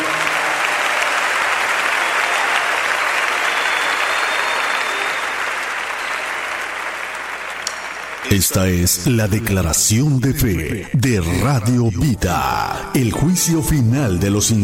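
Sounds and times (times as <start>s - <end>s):
large audience clapping loudly: 0.0s - 10.6s
speech: 8.3s - 14.6s.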